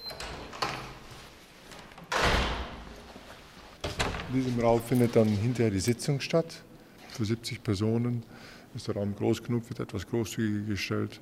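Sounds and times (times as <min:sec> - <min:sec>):
heavy conference room door swinging open with broad whoosh and rumble: 0:01.9 - 0:03.0, 0:03.8 - 0:04.7
speech: 0:04.3 - 0:11.2.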